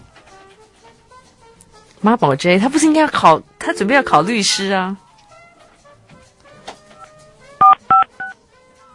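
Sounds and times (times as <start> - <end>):
speech: 2.0 - 5.0
phone keypad dual-tone beeps dialing a number: 7.6 - 8.4.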